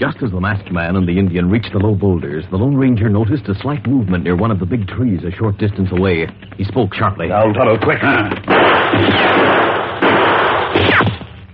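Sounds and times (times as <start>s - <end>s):
speech: 0.0s - 9.7s
bullet whines: 8.2s - 11.5s
exchange of gunshots among boulders and trees: 8.4s - 11.5s.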